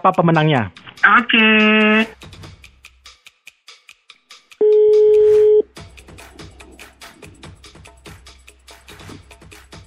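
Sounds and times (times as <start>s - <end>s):
speech: 0.0s - 2.4s
telephone dialing beeps: 4.6s - 5.6s.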